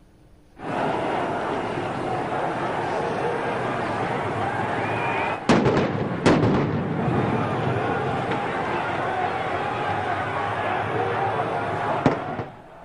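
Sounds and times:
crowd of thousands of protesters roaring: 0:00.6 - 0:12.8
sharp blasts: 0:05.3 - 0:09.4.

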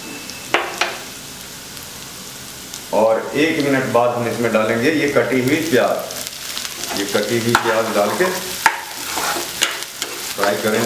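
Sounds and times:
chopped ginger and garlic frying in a pan: 0:00.0 - 0:10.8
speech: 0:02.9 - 0:06.2, 0:07.0 - 0:08.5, 0:10.4 - 0:10.8
stirring scraping a pan: 0:06.2 - 0:10.8.

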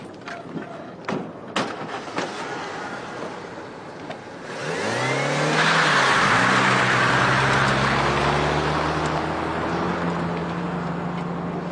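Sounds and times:
road noise: 0:00.0 - 0:11.6
car engine revving as the vehicle pulls away: 0:04.4 - 0:11.5.

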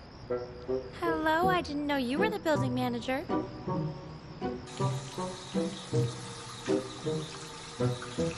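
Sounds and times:
speech: 0:00.3 - 0:08.3
water gushing from a sink faucet: 0:04.7 - 0:08.3.

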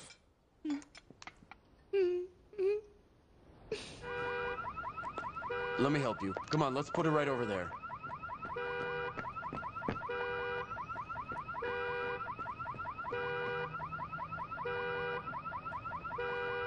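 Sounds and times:
car alarm blaring with whooping sweeps, chirps and electronic tones: 0:04.0 - 0:16.6
speech: 0:05.8 - 0:07.8.

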